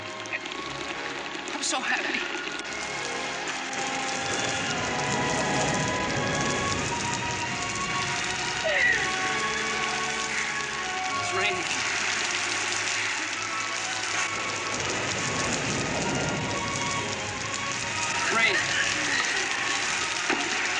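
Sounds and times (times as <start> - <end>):
rain pattering on a surface: 0.0 - 20.7
speech: 1.7 - 2.6.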